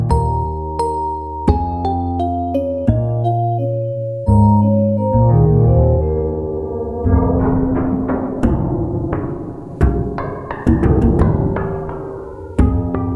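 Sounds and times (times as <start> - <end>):
software synthesizer solo: 0.1 - 13.0.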